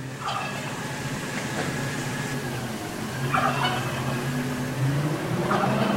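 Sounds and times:
garbage truck idling or rolling in: 0:00.0 - 0:05.9
turkey gobbling: 0:00.1 - 0:02.3, 0:03.1 - 0:04.5, 0:05.4 - 0:05.9.

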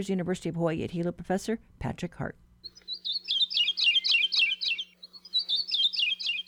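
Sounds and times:
speech: 0:00.0 - 0:02.4
Maui parrotbill singing sweet rapid chirping phrases: 0:02.7 - 0:06.4.

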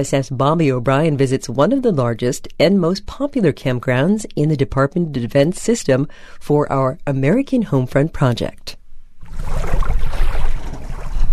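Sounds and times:
speech: 0:00.0 - 0:08.8
Tampa Bay water lapping at a marina boat ramp: 0:09.2 - 0:11.3.

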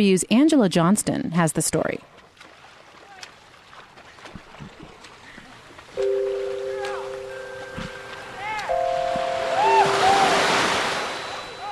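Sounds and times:
speech: 0:00.0 - 0:02.2
gentle waves washing along a bay shoreline: 0:02.0 - 0:11.6
steady tones above the water: 0:06.0 - 0:11.6.

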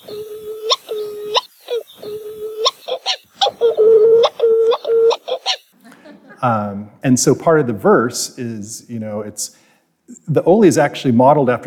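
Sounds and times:
Hawaiian petrel giving moaning nasal calls: 0:00.0 - 0:05.7
laughter: 0:05.8 - 0:06.8
speech: 0:06.4 - 0:09.6, 0:10.3 - 0:11.6.

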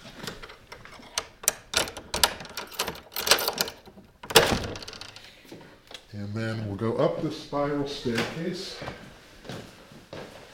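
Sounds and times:
skeleton key rattling and scraping in the old lock of an estate tower door: 0:00.4 - 0:05.3
speech: 0:06.2 - 0:09.1.

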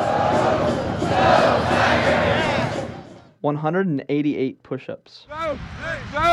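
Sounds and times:
large football stadium crowd roaring and cheering: 0:00.0 - 0:03.2, 0:05.3 - 0:06.3
speech: 0:03.4 - 0:06.3.

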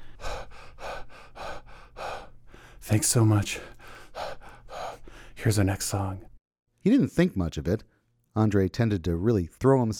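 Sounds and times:
punk band singer breathing heavily after an intense performance: 0:00.0 - 0:05.5
speech: 0:02.9 - 0:03.7, 0:05.4 - 0:09.9.

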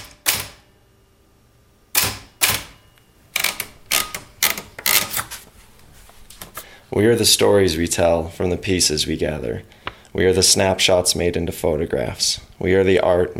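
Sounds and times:
mechanical typewriter typing on old paper: 0:00.0 - 0:00.6, 0:02.0 - 0:02.8, 0:03.4 - 0:05.4
speech: 0:06.9 - 0:13.3.

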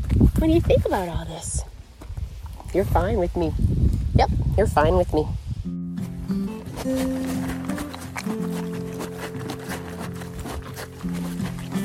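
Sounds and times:
young Mustang horse hooves clip-clopping on a trail: 0:00.0 - 0:02.9, 0:06.0 - 0:11.8
speech: 0:00.4 - 0:01.7, 0:02.7 - 0:05.4, 0:06.3 - 0:07.5.

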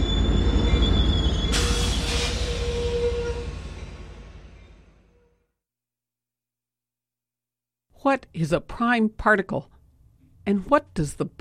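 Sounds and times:
train rumbling through a train station in California: 0:00.0 - 0:05.3
speech: 0:08.0 - 0:09.8, 0:10.4 - 0:11.3.

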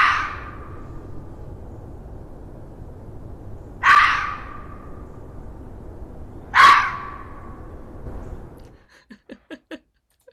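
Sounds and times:
red fox rasping screams calling for mates in late winter: 0:00.0 - 0:00.6, 0:03.8 - 0:04.7
background hiss: 0:00.0 - 0:10.3
laughter: 0:08.9 - 0:10.3.

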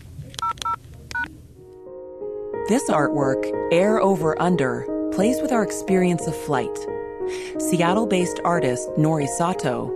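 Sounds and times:
telephone keypad dialing tones: 0:00.4 - 0:01.3
speech: 0:02.7 - 0:09.9.

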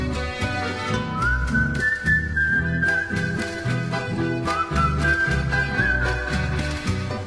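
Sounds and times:
rhythmic instrumental accompaniment with a plucked beat: 0:00.0 - 0:07.2
person whistling a soft gliding melody: 0:01.1 - 0:06.7.

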